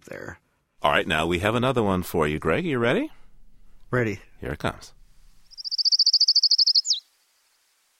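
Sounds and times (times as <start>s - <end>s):
speech: 0.1s - 3.2s, 3.9s - 5.0s
Colima warbler singing a high even trill: 5.5s - 7.0s.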